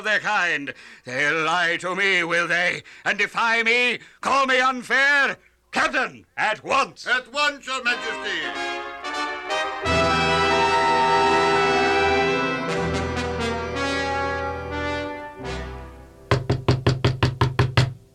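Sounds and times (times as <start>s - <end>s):
speech: 0.0s - 9.2s
orchestral music: 7.9s - 16.3s
knocking on a door: 16.3s - 18.0s.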